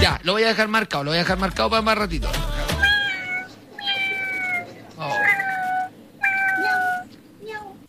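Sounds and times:
speech: 0:00.2 - 0:02.6
person imitating a cat meow: 0:02.8 - 0:07.1.

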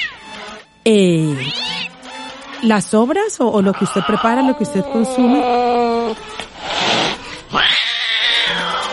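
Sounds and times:
cat yowling: 0:00.0 - 0:00.2, 0:01.4 - 0:01.9, 0:03.7 - 0:06.2, 0:07.5 - 0:08.9
speech: 0:00.8 - 0:01.6, 0:02.6 - 0:06.4
scratchy noisy sound: 0:06.6 - 0:07.4.

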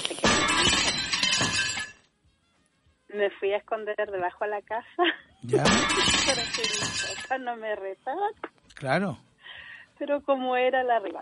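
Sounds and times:
mirror glass falling and shattering: 0:00.0 - 0:02.0, 0:05.6 - 0:07.4
breaking mirror glass shards rattling and tinkling: 0:00.2 - 0:02.0, 0:05.6 - 0:07.4
speech: 0:03.2 - 0:09.3, 0:10.0 - 0:11.1.

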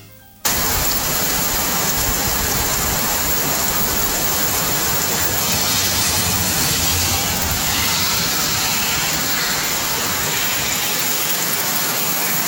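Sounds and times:
heavy torrential rain pouring down in Puerto Nuevo: 0:00.5 - 0:12.4
faint vehicles passing on the road underneath: 0:03.4 - 0:11.0.

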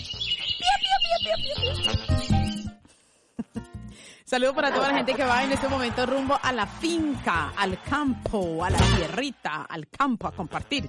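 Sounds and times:
chorus of small birds chirping in a tree: 0:00.0 - 0:02.8
laughter: 0:00.6 - 0:02.0, 0:04.5 - 0:07.4
speech: 0:04.3 - 0:10.8.

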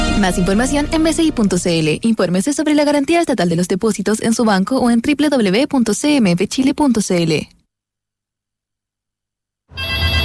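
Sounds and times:
speech: 0:00.2 - 0:07.6
intercom buzzing ring in a home: 0:09.7 - 0:10.2.

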